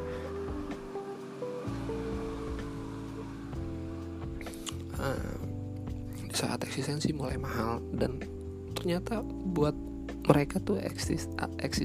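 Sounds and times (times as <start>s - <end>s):
steady rushing noise: 0.0s - 5.3s
motorcycle engine passing by: 0.0s - 5.4s
speech: 6.4s - 11.8s.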